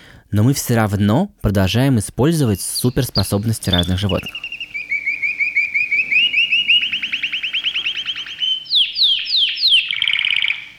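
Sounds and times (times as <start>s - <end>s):
speech: 0.3s - 4.4s
canary singing: 2.5s - 10.7s.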